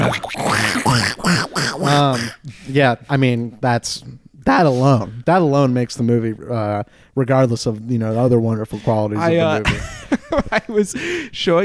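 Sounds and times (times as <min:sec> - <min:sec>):
voice imitating duck quacks: 0:00.0 - 0:02.4
speech: 0:00.1 - 0:11.6.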